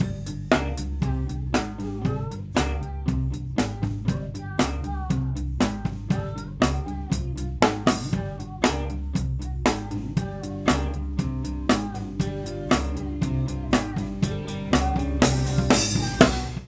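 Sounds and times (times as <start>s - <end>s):
drum kit overheads: 0.0s - 16.6s.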